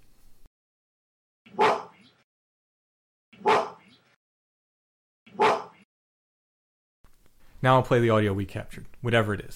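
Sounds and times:
gorilla barking: 1.5 - 2.2, 3.4 - 4.1, 5.3 - 5.8
speech: 7.6 - 9.5.

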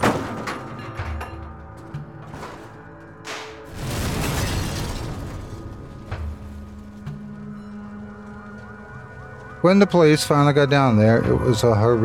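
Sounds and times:
heavy truck smashing through wall onto rocks: 0.0 - 0.9, 2.3 - 6.9
scattered thuds and clattering debris: 0.0 - 8.7
loud sustained crunching impact: 2.3 - 7.5
speech: 9.6 - 12.0.

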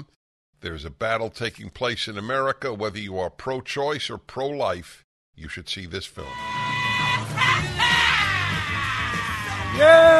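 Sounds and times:
speech: 0.0 - 7.2, 9.8 - 10.1
recorded scream used as show introduction: 6.2 - 10.1.

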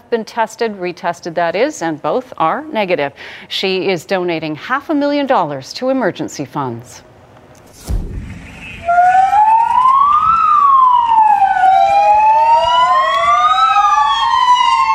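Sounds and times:
speech: 0.1 - 7.1
low thump: 7.7 - 8.9
Spanish police siren wailing in the street: 8.3 - 14.9.

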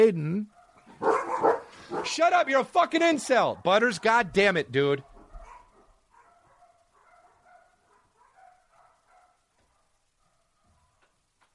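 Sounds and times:
speech: 0.0 - 1.2, 2.0 - 5.1
several dogs barking: 0.5 - 2.2, 5.0 - 11.0.

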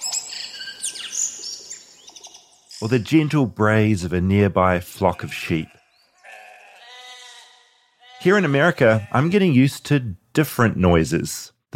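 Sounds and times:
tui bird from New Zealand calling: 0.0 - 2.8
speech: 2.8 - 5.8, 8.2 - 11.7.

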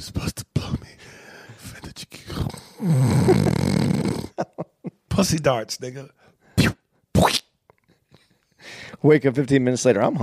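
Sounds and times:
speech: 0.0 - 0.4, 2.8 - 3.5, 5.2 - 6.2, 9.0 - 10.2
heavy raspy breathing close to the mic: 1.0 - 4.4, 8.4 - 9.0.

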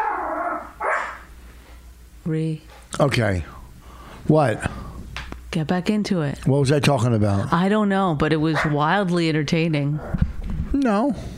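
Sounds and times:
dog barking: 0.6 - 1.3, 8.6 - 8.8
speech: 2.3 - 3.6, 4.2 - 4.7, 5.5 - 11.3.

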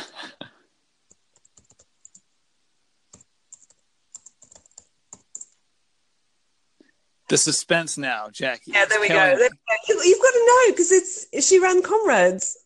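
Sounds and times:
typing a search on a computer keyboard: 1.1 - 2.3, 3.1 - 5.6
speech: 7.3 - 12.6.

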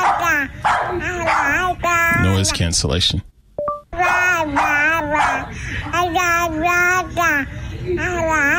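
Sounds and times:
dog barking and yelping: 0.0 - 2.0, 4.0 - 5.6
baby babbling: 0.0 - 2.4, 4.0 - 8.5
speech: 2.4 - 3.3, 4.5 - 8.5
brief beep-like tone: 3.6 - 3.9.

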